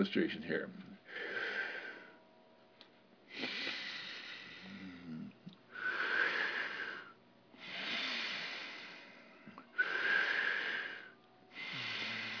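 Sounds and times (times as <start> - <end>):
deep breathing in through mouth, out through nose: 1.0 - 2.3, 3.3 - 12.3.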